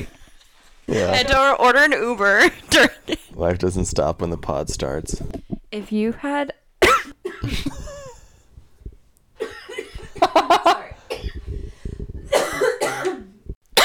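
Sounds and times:
speech: 0:00.9 - 0:06.6, 0:07.4 - 0:07.8
harsh coughing fit after using a vape pen: 0:06.8 - 0:08.4, 0:09.4 - 0:10.3, 0:11.0 - 0:11.5, 0:12.2 - 0:13.8
throaty wheezy breaths: 0:11.4 - 0:12.3.

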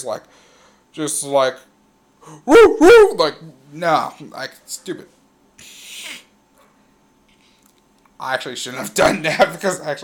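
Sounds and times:
speech: 0:00.0 - 0:05.8, 0:08.2 - 0:10.0
person imitating a dog howl: 0:02.4 - 0:03.3.

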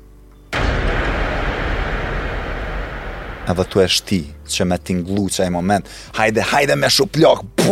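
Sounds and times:
explosion sound effect: 0:00.6 - 0:04.6
low hum: 0:00.6 - 0:05.0
speech: 0:03.5 - 0:07.7.

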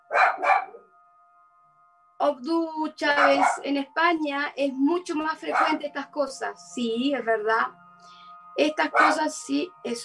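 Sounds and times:
dog barking with loud sharp woofs: 0:00.0 - 0:00.8, 0:03.1 - 0:03.6, 0:05.5 - 0:05.8, 0:08.9 - 0:09.2
speech: 0:02.2 - 0:10.0.

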